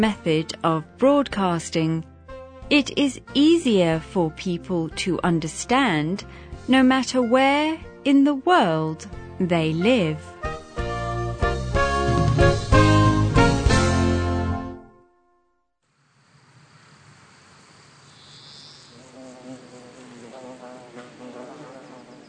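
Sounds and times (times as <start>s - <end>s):
speech: 0.0s - 2.1s, 2.7s - 10.4s
music: 0.0s - 15.8s
honeybees buzzing among flowers on a warm sunny day: 16.4s - 22.2s.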